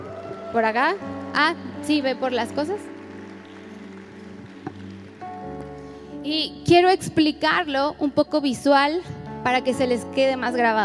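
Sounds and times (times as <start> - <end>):
audience applauding: 0.0 - 6.1
speech: 0.5 - 2.9, 6.2 - 10.8.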